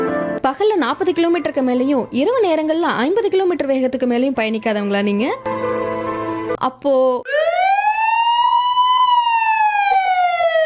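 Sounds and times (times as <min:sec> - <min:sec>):
speech: 0:00.4 - 0:05.8, 0:06.5 - 0:07.5
emergency vehicle siren wailing: 0:07.3 - 0:10.6.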